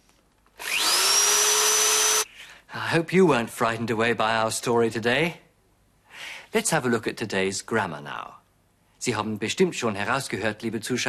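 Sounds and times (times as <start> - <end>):
dental drill whirring: 0.6 - 2.3
speech: 2.9 - 5.4, 6.5 - 8.4, 9.0 - 11.0.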